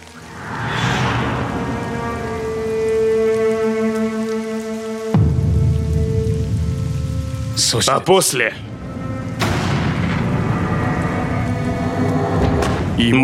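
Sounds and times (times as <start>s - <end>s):
sustained droning tone: 0.0s - 4.4s
rain falling: 0.0s - 13.2s
speech: 7.7s - 8.7s, 13.0s - 13.2s.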